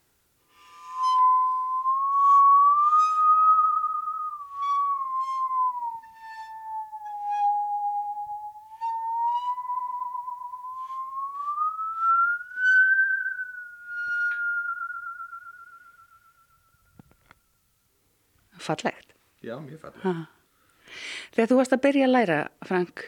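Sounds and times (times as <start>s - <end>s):
musical saw playing a slow melody: 0.5s - 16.0s
speech: 18.6s - 20.4s, 21.4s - 23.0s.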